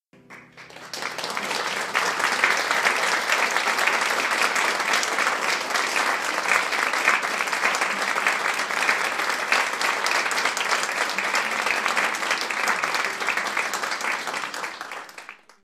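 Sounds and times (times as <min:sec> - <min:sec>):
applause: 0:00.0 - 0:15.6.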